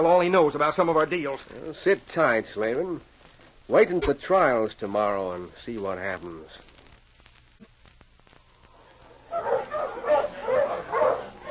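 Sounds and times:
speech: 0.0s - 3.1s, 3.7s - 6.6s
dogs yelping barks: 9.2s - 11.4s.

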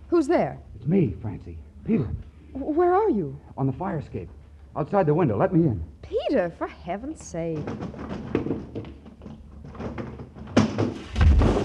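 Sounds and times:
speech: 0.2s - 8.4s
Murphy bed falling down with a crash: 9.8s - 11.6s.

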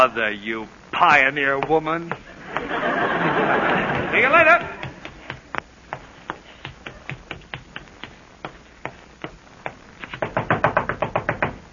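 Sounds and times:
speech: 0.0s - 4.8s
laughter: 2.2s - 5.0s
sharp knocking on a door: 10.2s - 11.6s.

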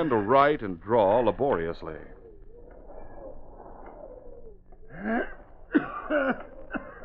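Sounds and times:
speech: 0.0s - 2.2s, 4.9s - 6.5s
low hum: 0.0s - 7.0s
man coughing violently: 5.1s - 7.0s.

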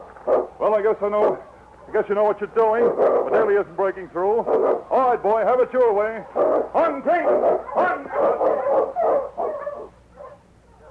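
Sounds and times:
sled dog leading a dog team barking: 0.2s - 0.6s, 1.2s - 2.1s, 2.8s - 3.6s, 4.4s - 5.1s, 6.2s - 10.9s
speech: 0.6s - 9.0s
sled dog yelping: 2.8s - 3.5s, 4.4s - 5.0s, 6.2s - 10.9s.

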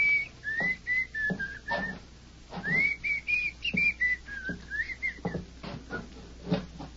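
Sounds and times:
man whistling a slow wandering tune in a small cabin: 0.0s - 2.0s, 2.6s - 6.1s
faint knocks: 0.0s - 6.9s
shuffling sounds: 0.0s - 6.9s.

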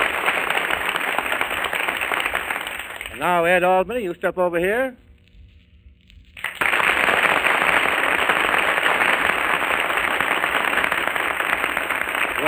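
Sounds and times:
large studio audience applauding in an echo contest: 0.0s - 3.5s, 6.4s - 12.4s
speech: 3.2s - 5.0s.

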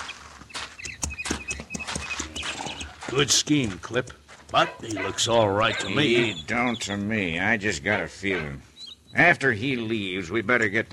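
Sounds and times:
horse hooves clip-clopping at a walking pace: 0.0s - 5.1s
speech: 3.1s - 10.9s.

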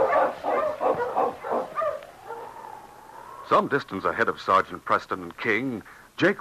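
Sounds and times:
husky dog barking: 0.0s - 2.9s
speech: 3.5s - 6.3s.

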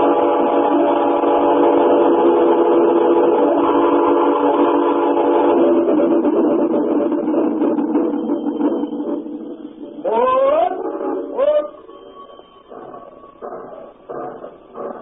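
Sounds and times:
sustained droning whistle-like tones: 0.0s - 5.9s, 7.6s - 15.0s
train rumbling on rails: 0.0s - 15.0s.

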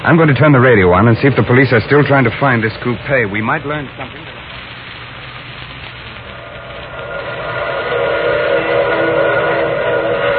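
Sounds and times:
speech: 0.0s - 4.4s
rumbling rail noise: 0.0s - 10.3s
train whistle: 7.0s - 10.3s.

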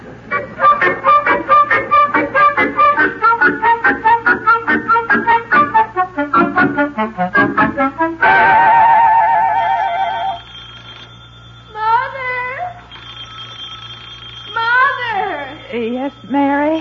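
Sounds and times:
steady electronic tones: 0.0s - 16.8s
telephone bell ringing in a rapid rattling trill: 9.5s - 16.8s.

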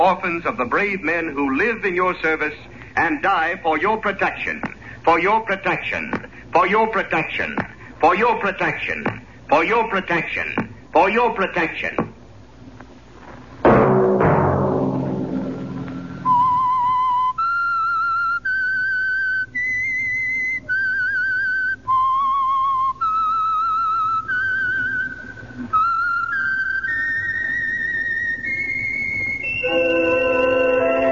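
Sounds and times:
speech: 0.0s - 12.1s
broad crash or chord: 13.7s - 16.8s
single clear whistle carrying a slow sustained radio theme melody: 15.6s - 31.1s.

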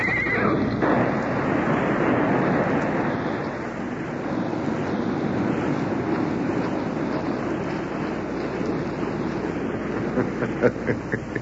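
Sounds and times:
galloping horses whinnying loudly: 0.0s - 0.8s
galloping horse hooves clattering: 0.0s - 11.4s
laughter: 10.0s - 11.4s.

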